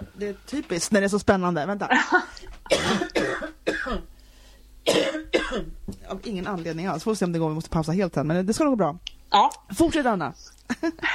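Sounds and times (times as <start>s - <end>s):
speech: 0.2s - 4.1s, 5.6s - 11.1s
person coughing: 1.9s - 4.1s, 4.9s - 5.7s.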